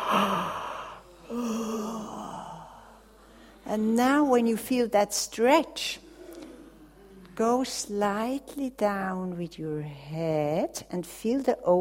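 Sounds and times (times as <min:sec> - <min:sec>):
person yawning during a stretching exercise: 0:00.0 - 0:02.7
speech: 0:03.7 - 0:06.0, 0:07.4 - 0:11.8.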